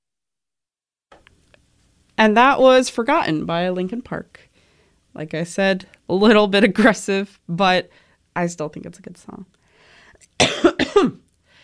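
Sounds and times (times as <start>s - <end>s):
speech: 2.2s - 4.5s, 5.2s - 9.6s
person coughing: 10.4s - 11.2s.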